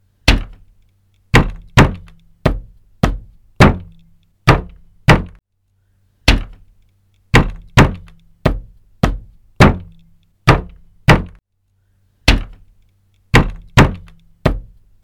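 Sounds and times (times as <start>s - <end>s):
knocking on a door: 1.4s - 5.4s, 7.4s - 11.4s, 13.4s - 15.0s.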